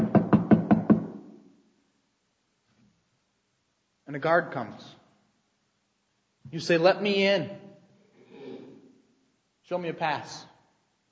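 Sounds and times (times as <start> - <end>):
knocking on a gate: 0.0 - 1.1
speech: 4.1 - 5.0, 6.5 - 7.6, 9.7 - 10.5.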